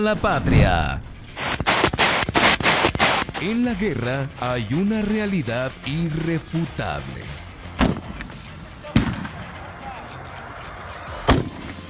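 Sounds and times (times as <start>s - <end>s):
speech: 0.0s - 1.0s, 3.4s - 7.4s
machine gun fire shot close to soldiers: 1.5s - 3.5s.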